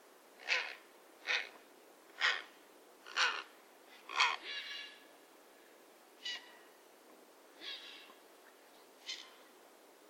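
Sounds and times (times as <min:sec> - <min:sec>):
grey heron: 0:00.4 - 0:05.2, 0:06.2 - 0:06.8, 0:07.6 - 0:09.6.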